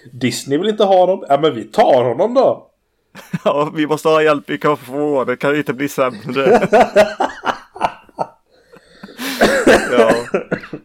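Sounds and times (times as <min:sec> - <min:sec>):
speech: 0:00.0 - 0:07.3, 0:09.9 - 0:10.8
laughter: 0:03.2 - 0:03.7, 0:06.1 - 0:10.8
short cough-like bursts: 0:09.1 - 0:10.8.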